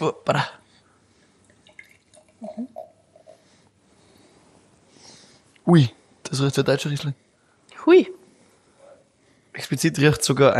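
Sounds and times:
speech: 0:00.0 - 0:00.6, 0:05.7 - 0:08.2, 0:09.7 - 0:10.5
sparkling wine poured into a glass: 0:01.4 - 0:03.5.

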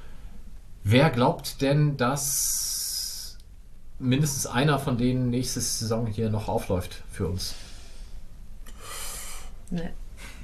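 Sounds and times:
speech: 0:00.9 - 0:02.7, 0:04.0 - 0:07.6, 0:09.7 - 0:10.0
person drawing a sharp heavy inhalation before speaking: 0:07.5 - 0:09.6.

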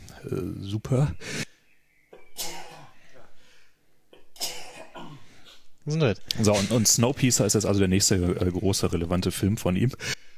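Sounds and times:
speech: 0:00.2 - 0:01.4, 0:05.8 - 0:10.2
person clearing throat: 0:02.2 - 0:03.3, 0:04.2 - 0:05.3.

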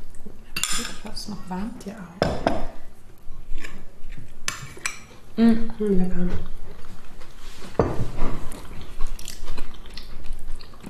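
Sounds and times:
speech: 0:01.2 - 0:02.7, 0:05.4 - 0:06.6
chewing crunchy gluten-free crumble with tiny streusel bits: 0:03.1 - 0:05.3, 0:06.2 - 0:10.8.

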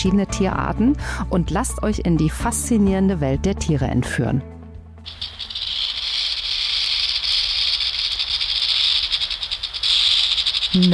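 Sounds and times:
speech: 0:00.0 - 0:05.5, 0:10.8 - 0:10.9
snake rattle buzzing: 0:05.0 - 0:10.9.

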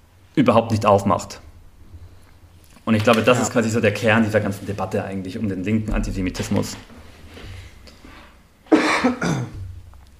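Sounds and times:
speech: 0:00.4 - 0:01.4, 0:02.9 - 0:07.0, 0:09.0 - 0:09.5
person coughing: 0:08.7 - 0:09.6
person clearing throat: 0:08.7 - 0:09.7.

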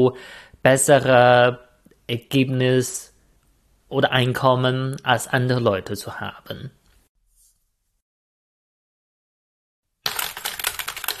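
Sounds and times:
speech: 0:00.0 - 0:03.1, 0:03.9 - 0:06.8
mechanical keyboard typing: 0:10.1 - 0:11.1.

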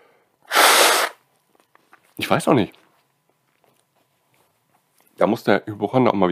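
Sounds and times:
loud sneeze: 0:00.5 - 0:01.2
speech: 0:02.2 - 0:02.8, 0:05.2 - 0:06.3.

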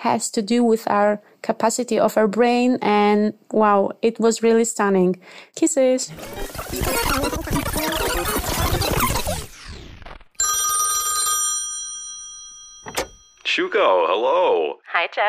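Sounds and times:
speech: 0:00.0 - 0:08.3, 0:13.6 - 0:15.2
telephone bell ringing: 0:10.4 - 0:13.4.

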